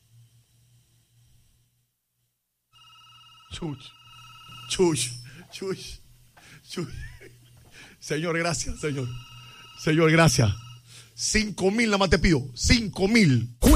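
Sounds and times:
telephone ringing with steady electronic tone: 2.7s - 5.4s, 8.6s - 10.9s
speech: 3.5s - 4.0s, 4.7s - 6.0s, 6.6s - 7.1s, 8.0s - 10.6s, 11.2s - 13.7s.

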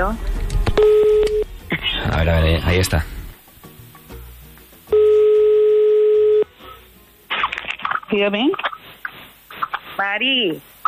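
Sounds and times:
speech: 0.0s - 0.9s, 2.2s - 3.2s, 8.1s - 8.7s, 10.0s - 10.7s
telephone ringing tone during a call: 0.8s - 1.5s, 4.9s - 6.5s.

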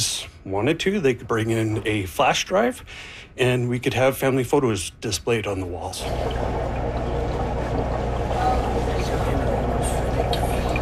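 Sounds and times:
speech: 0.1s - 6.8s
bubbles circulating in water-filled bubble tube: 6.0s - 10.8s
low constant motor hum: 6.0s - 10.8s.

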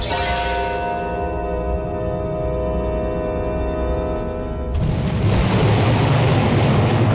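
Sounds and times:
steady ringing hum: 0.0s - 5.4s
thunder rumbling before a storm: 4.7s - 7.1s.

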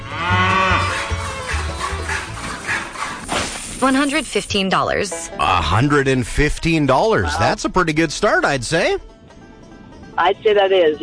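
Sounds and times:
cow mooing in a long raspy bellow: 0.0s - 3.2s
speech: 3.8s - 9.1s, 10.2s - 11.0s.

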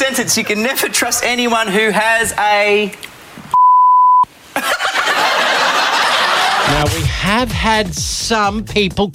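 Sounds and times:
speech: 0.1s - 3.1s, 6.7s - 9.1s
censor beep tone masking a word: 3.5s - 4.3s
laughter: 4.5s - 7.3s.

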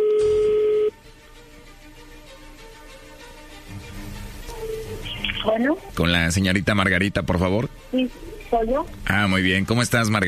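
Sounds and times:
telephone keypad tone: 0.0s - 0.9s
speech: 5.5s - 10.2s.

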